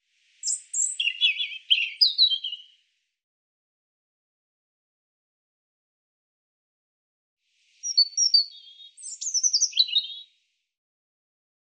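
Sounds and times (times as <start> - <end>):
European robin singing: 0.4 - 2.8, 7.8 - 10.3.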